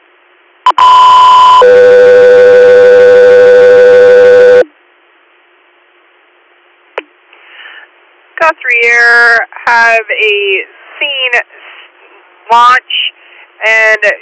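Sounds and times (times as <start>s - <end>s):
two-tone radio dispatch alert paging an air medical helicopter crew: 0.7s - 4.6s
speech: 9.0s - 11.6s, 12.5s - 14.2s.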